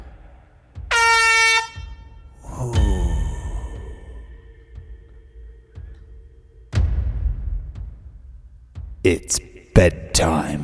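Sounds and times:
low thumps: 0:00.0 - 0:10.6
air horn blast: 0:00.9 - 0:02.2
speech: 0:09.1 - 0:10.6.

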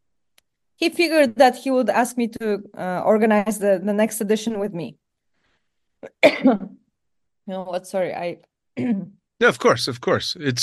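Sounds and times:
speech: 0:00.8 - 0:05.0, 0:06.0 - 0:06.8, 0:07.5 - 0:10.6
person clearing throat roughly: 0:06.0 - 0:06.7
person coughing harshly: 0:06.0 - 0:06.7.

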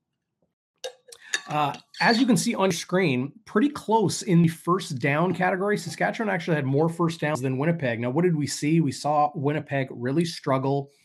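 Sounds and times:
glass of water clinking: 0:00.8 - 0:02.3
speech: 0:01.5 - 0:11.0.

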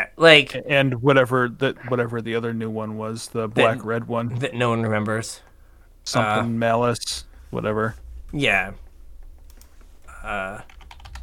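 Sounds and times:
speech: 0:00.2 - 0:08.8, 0:10.2 - 0:10.7
fingers typing on a computer keyboard: 0:10.4 - 0:11.2.

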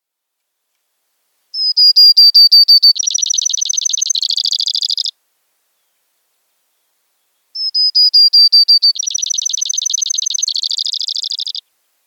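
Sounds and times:
Brewer's Sparrow singing a short high trilling song: 0:01.5 - 0:05.1, 0:06.7 - 0:11.7.

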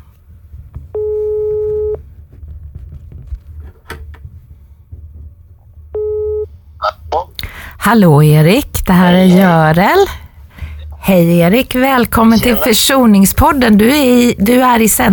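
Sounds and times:
low hum: 0:00.0 - 0:15.1
electronic ringback tones on a telephone line: 0:06.0 - 0:06.5
speech: 0:07.9 - 0:10.2, 0:11.1 - 0:15.1.

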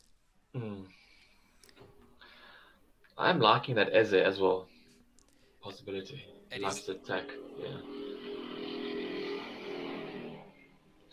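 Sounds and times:
speech: 0:00.6 - 0:01.0, 0:03.2 - 0:04.7, 0:05.6 - 0:08.0
motorbike engine roaring while passing: 0:06.1 - 0:11.1.

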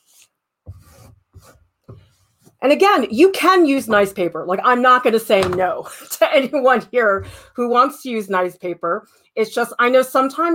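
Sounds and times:
tool scraping ink paste made from ink sticks: 0:00.0 - 0:02.6
speech: 0:02.6 - 0:10.5.

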